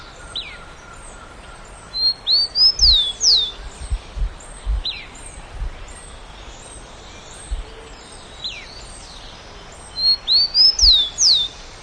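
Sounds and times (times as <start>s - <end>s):
soft environmental noise: 0.0s - 11.8s
bird chirps and whistles: 2.0s - 3.6s, 10.0s - 11.5s.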